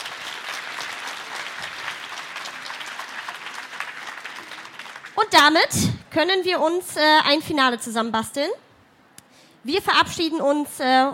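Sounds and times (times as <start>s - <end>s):
audience applause: 0.0s - 5.2s
speech: 5.2s - 8.6s, 9.6s - 11.1s.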